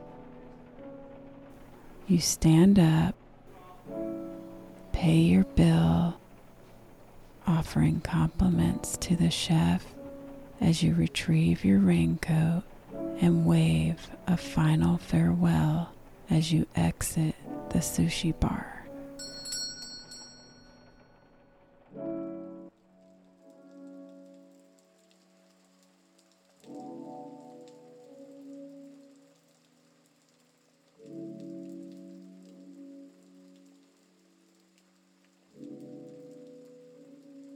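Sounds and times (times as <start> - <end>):
light rain pattering on surfaces outside a sushi bar: 0.0 - 37.5
speech: 2.1 - 3.2, 5.0 - 6.2, 7.5 - 10.0, 10.6 - 19.4
deep resonant chime tones: 19.2 - 21.2.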